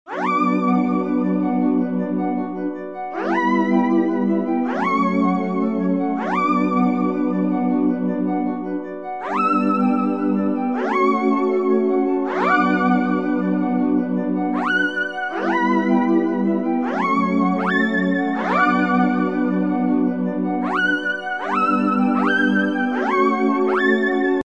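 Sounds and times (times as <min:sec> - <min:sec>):
synth pad: 0:00.1 - 0:24.4.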